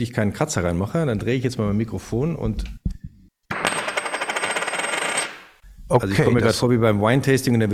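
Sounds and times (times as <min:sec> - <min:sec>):
speech: 0:00.0 - 0:02.8, 0:05.9 - 0:07.7
gold coin dropped onto a table: 0:03.5 - 0:05.5.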